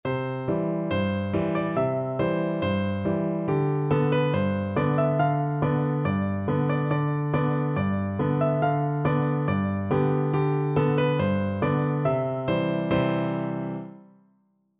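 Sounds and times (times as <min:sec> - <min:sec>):
piano duet: 0:00.0 - 0:14.1.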